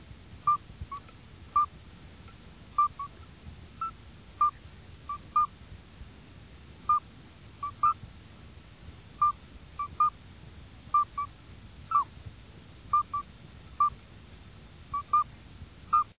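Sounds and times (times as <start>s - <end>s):
steady low hiss: 0.0s - 16.1s
midwife toad piping calls: 0.4s - 1.8s, 2.7s - 5.6s, 6.8s - 8.0s, 9.2s - 10.2s, 10.9s - 12.1s, 12.9s - 14.0s, 14.9s - 15.3s, 15.9s - 16.1s.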